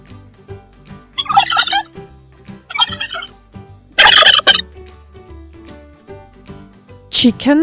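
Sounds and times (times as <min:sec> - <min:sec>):
turkey gobbling: 0:01.2 - 0:01.9, 0:02.7 - 0:03.3, 0:04.0 - 0:04.6.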